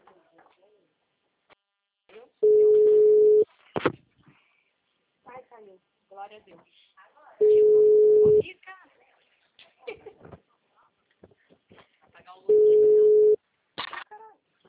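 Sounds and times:
telephone tone after a dropped call: 2.4s - 3.4s, 7.4s - 8.4s, 12.5s - 13.4s
speech: 5.6s - 8.8s.

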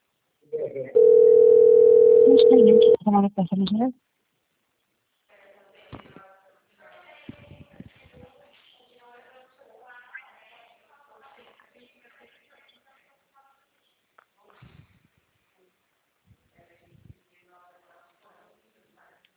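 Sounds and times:
voices talking: 0.5s - 1.4s, 2.2s - 3.9s
telephone dial tone: 1.0s - 3.0s.

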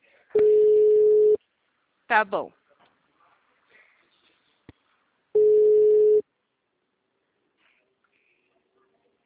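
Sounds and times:
outgoing telephone call ringing tone: 0.4s - 1.4s, 5.4s - 6.2s
speech: 2.1s - 2.6s.

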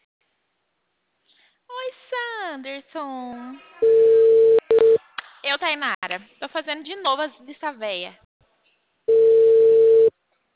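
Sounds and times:
speech: 2.6s - 4.0s, 5.4s - 8.2s
telephone tone while a call is being placed: 9.1s - 10.1s.

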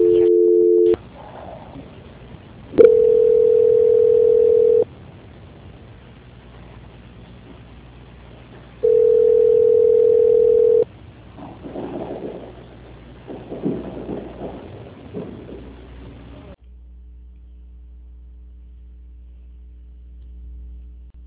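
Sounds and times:
telephone ringback tone during a call transfer: 0.0s - 1.0s, 2.8s - 4.8s, 8.8s - 10.8s.

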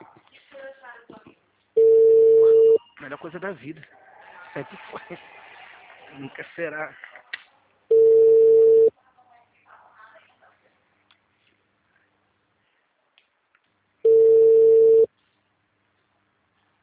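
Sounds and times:
unanswered telephone call ringback tone: 1.8s - 2.8s, 7.9s - 8.9s, 14.0s - 15.1s
speech: 3.2s - 5.4s, 6.1s - 7.1s
laughter: 3.9s - 7.1s.

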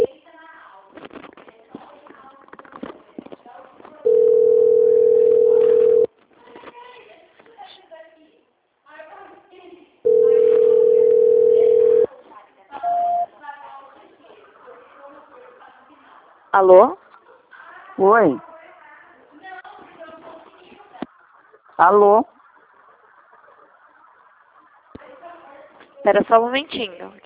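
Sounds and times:
telephone ringing tone while a call is transferred: 4.0s - 6.1s, 10.0s - 12.1s, 12.8s - 13.3s
speech: 16.7s - 17.0s, 18.0s - 18.5s, 21.8s - 22.4s, 26.1s - 27.2s.

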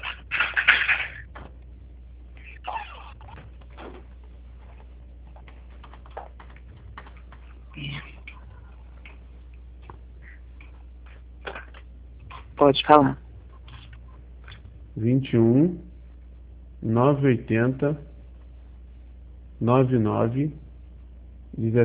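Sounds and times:
someone rummaging through objects searching for a pen: 3.2s - 12.6s
speech: 12.6s - 13.2s, 15.0s - 15.9s, 16.8s - 18.1s, 19.6s - 20.6s, 21.6s - 21.8s.

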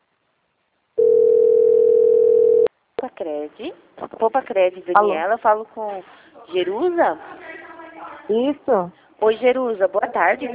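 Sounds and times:
steady telephone dial tone while a call is placed: 1.0s - 2.7s
speech: 3.2s - 7.3s, 8.3s - 10.5s.

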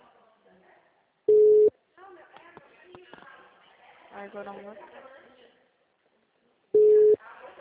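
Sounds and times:
telephone busy beep: 1.3s - 1.7s, 6.8s - 7.2s
speech: 4.2s - 5.2s.

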